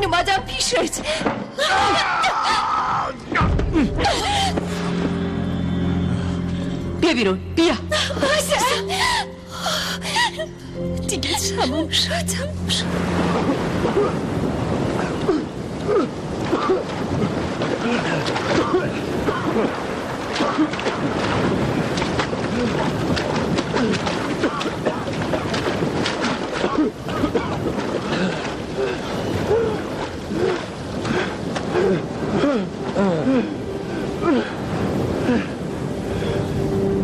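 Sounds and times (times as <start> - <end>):
speech: 0.0 - 2.7, 7.1 - 9.2, 10.4 - 14.6, 17.8 - 24.9
sea waves washing around a ship on open water: 0.4 - 37.0
gusting wind over open water: 3.2 - 37.0.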